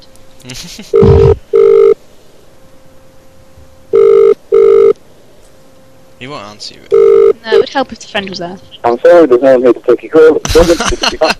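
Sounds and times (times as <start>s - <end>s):
laughter: 0.4s - 1.0s, 10.4s - 11.3s
speech: 0.4s - 1.7s, 6.2s - 11.3s
electronic ringback tone on an outgoing phone call: 1.0s - 2.0s, 3.9s - 5.0s, 6.9s - 7.6s.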